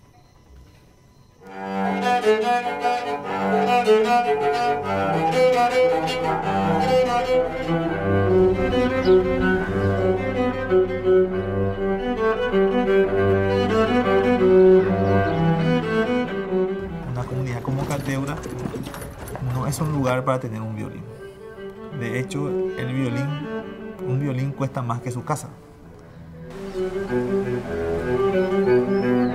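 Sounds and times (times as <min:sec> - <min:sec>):
homemade cello made from an oil can and scrap wood playing bowed notes: 0:01.4 - 0:29.3
speech: 0:03.8 - 0:16.3, 0:17.2 - 0:19.0, 0:19.6 - 0:21.1, 0:22.0 - 0:23.5, 0:24.1 - 0:25.7.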